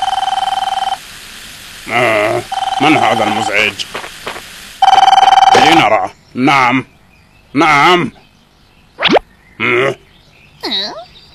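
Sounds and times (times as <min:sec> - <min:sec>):
telephone ringing with a rapidly trilling electronic bell: 0:00.0 - 0:01.0, 0:02.5 - 0:03.5, 0:04.8 - 0:05.8
speech: 0:01.9 - 0:04.0, 0:05.6 - 0:06.9, 0:07.5 - 0:08.2, 0:09.6 - 0:10.0, 0:10.6 - 0:11.3.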